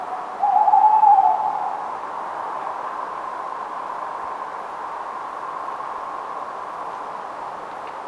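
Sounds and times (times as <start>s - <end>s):
tawny owl hooting at night in Somerset: 0.0s - 2.0s
soft steady hiss: 0.0s - 8.0s.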